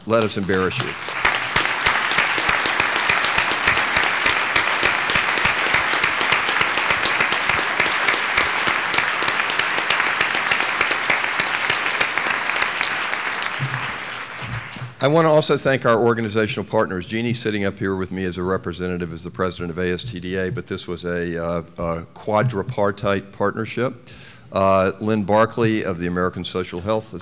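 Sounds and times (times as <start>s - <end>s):
audience applauding: 0.0s - 15.0s
speech: 0.1s - 1.2s, 15.0s - 27.2s.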